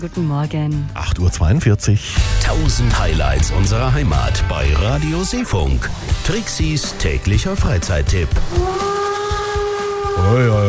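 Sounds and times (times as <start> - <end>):
speech: 0.0 - 8.9, 10.2 - 10.6
steam locomotive low rhythmic chuffs: 2.1 - 10.3
steam locomotive whistle: 8.4 - 10.6.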